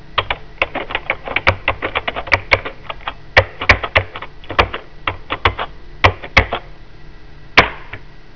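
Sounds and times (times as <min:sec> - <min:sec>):
computer keyboard typing: 0:00.2 - 0:06.7.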